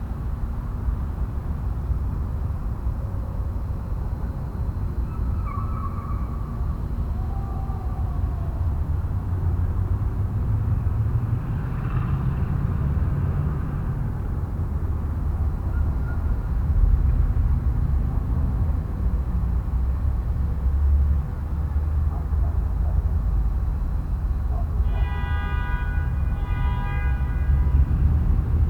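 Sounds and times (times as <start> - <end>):
urban night traffic echoes: 0.0 - 28.6
dog at night in an urban area: 22.1 - 23.1, 24.5 - 24.8.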